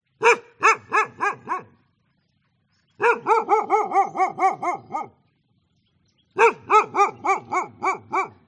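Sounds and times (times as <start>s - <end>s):
birds in Vietnam: 0.0s - 8.4s
dog barking in Vietnam: 0.2s - 1.8s, 3.0s - 5.2s, 6.4s - 8.4s.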